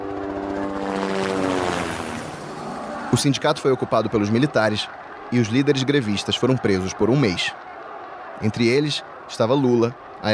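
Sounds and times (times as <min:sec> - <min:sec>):
army helicopters flying overhead: 0:00.0 - 0:06.2
speech: 0:03.1 - 0:07.6, 0:08.4 - 0:10.3.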